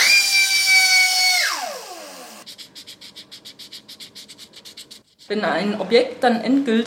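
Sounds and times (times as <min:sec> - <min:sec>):
high-pitched rotary grinding tool grinding repaired porcelain: 0:00.0 - 0:02.4
rhythmic scraping strokes rubbing a surface smooth: 0:02.4 - 0:05.8
speech: 0:05.3 - 0:06.8.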